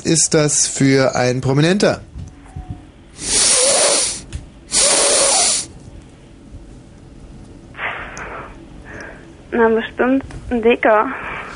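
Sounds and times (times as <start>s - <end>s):
speech: 0.0s - 2.1s, 9.6s - 11.3s
person sniffing: 3.2s - 5.7s.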